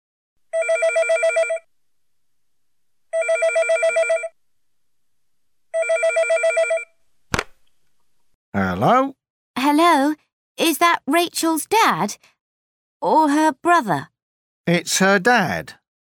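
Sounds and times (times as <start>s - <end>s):
telephone ringing in double-pulsed pattern: 0.5s - 1.7s, 3.1s - 4.4s, 5.7s - 7.0s
speech: 8.6s - 12.3s, 13.0s - 15.8s.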